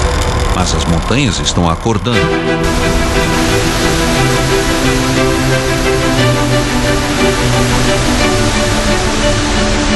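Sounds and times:
speech: 0.6s - 3.1s
powerful waterfall fed by melting mountain snow and ice roaring: 2.6s - 9.9s.

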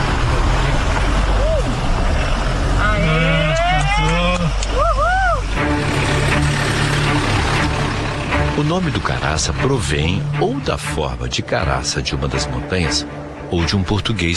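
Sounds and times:
car engine revving as it climbs uphill over stones on a rough track: 0.0s - 10.9s
people shouting: 2.8s - 5.5s
speech: 8.7s - 14.3s.

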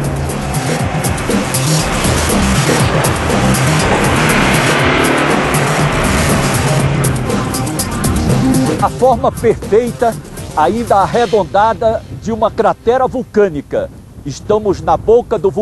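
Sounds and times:
car engine revving hard straining under load stuck in sand: 0.0s - 11.4s
faint tire scraping: 0.0s - 14.6s
speech: 8.8s - 15.6s.

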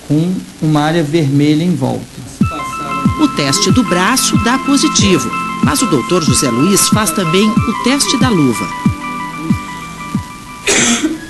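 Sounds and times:
speech: 0.1s - 2.4s, 3.2s - 8.9s
faint tone: 2.4s - 11.2s
person coughing during an allergy test: 10.7s - 11.2s.

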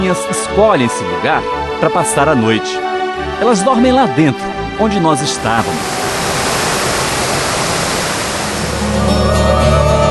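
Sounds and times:
speech: 0.1s - 6.0s
waterfall rushing with a loud roar: 5.2s - 10.0s.

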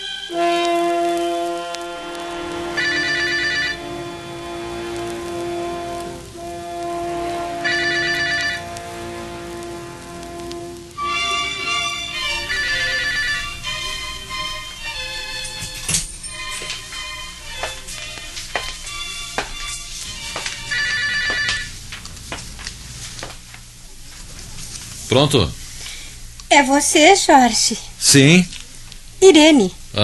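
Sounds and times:
steady patter: 0.3s - 29.9s
telephone bell trilling: 2.6s - 4.2s, 7.6s - 8.8s, 11.1s - 17.7s, 19.0s - 21.8s
speech: 25.2s - 25.6s, 26.6s - 28.6s, 29.2s - 30.0s.

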